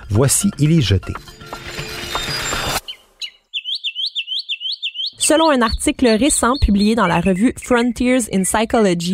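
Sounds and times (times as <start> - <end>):
speech: 0.1 - 1.7, 5.3 - 9.1
harsh clattering noise: 0.5 - 2.8
mockingbird singing bright repeated chirps: 2.8 - 9.1.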